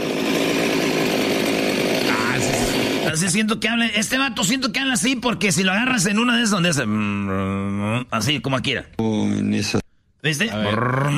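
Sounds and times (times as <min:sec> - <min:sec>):
person imitating a chainsaw starting up with the mouth: 0:00.0 - 0:03.2, 0:06.9 - 0:08.1, 0:10.5 - 0:11.1
speech: 0:03.1 - 0:11.1.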